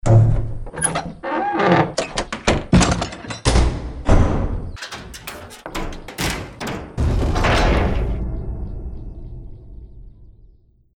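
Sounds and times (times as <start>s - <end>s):
opening and closing: 0.0s - 8.3s.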